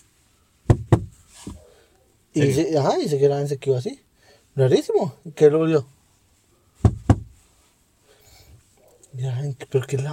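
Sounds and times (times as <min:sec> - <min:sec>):
knocking on a wooden door: 0:00.7 - 0:01.2, 0:06.8 - 0:07.4
speech: 0:02.4 - 0:06.0, 0:09.2 - 0:10.1.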